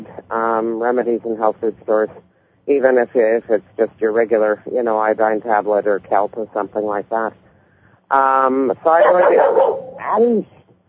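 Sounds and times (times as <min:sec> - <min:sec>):
speech: 0:00.3 - 0:07.4, 0:08.1 - 0:10.6
dog barking in drawn-out tonal bursts: 0:09.0 - 0:10.2.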